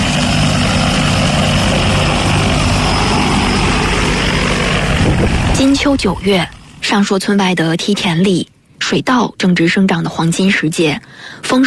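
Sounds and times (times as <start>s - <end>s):
agricultural crop-spraying drone propellers buzzing: 0.0s - 6.9s
speech: 5.6s - 11.6s.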